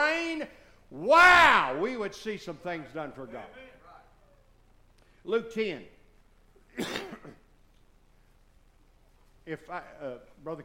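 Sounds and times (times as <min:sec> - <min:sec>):
speech: 0:00.5 - 0:03.7, 0:05.2 - 0:06.0, 0:06.8 - 0:07.4, 0:09.5 - 0:10.6
person coughing: 0:06.7 - 0:07.5.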